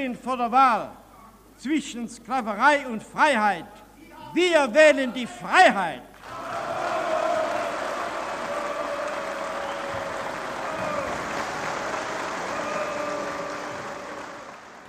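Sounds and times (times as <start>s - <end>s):
speech: 0.0s - 1.0s, 1.6s - 6.4s
large crowd applauding after a political speech in Germany: 6.2s - 14.8s.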